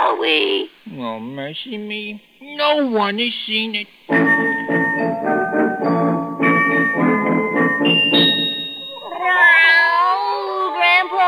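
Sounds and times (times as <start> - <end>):
speech: 0.2 - 4.5
voiced tonal sound: 4.1 - 9.5
female cat meowing: 8.9 - 11.1.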